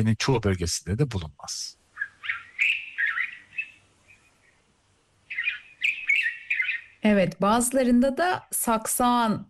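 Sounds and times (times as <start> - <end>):
speech: 0.0 - 1.8, 7.0 - 9.4
white-spectacled bulbul singing bright warbling phrases: 1.8 - 7.1.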